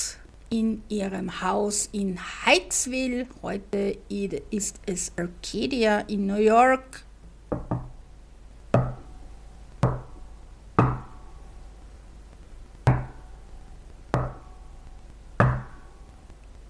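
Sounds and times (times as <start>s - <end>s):
speech: 0.5s - 7.7s
sharp hollow knocks: 7.5s - 8.0s, 8.8s - 9.1s, 9.8s - 10.2s, 10.8s - 11.3s, 12.9s - 13.3s, 14.1s - 14.5s, 15.4s - 15.9s.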